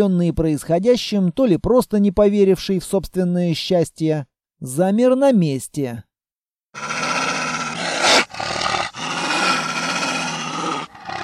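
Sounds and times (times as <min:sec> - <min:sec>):
speech: 0:00.0 - 0:06.1, 0:06.8 - 0:07.0
wolf growling in a snowy setting: 0:06.8 - 0:11.2.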